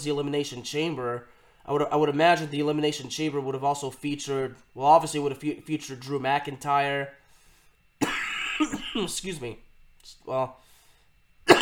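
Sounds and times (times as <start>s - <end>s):
speech: 0.0s - 7.2s, 8.0s - 10.6s
man clearing his throat: 8.0s - 9.2s, 11.5s - 11.6s
man coughing harshly: 8.0s - 9.2s, 11.5s - 11.6s.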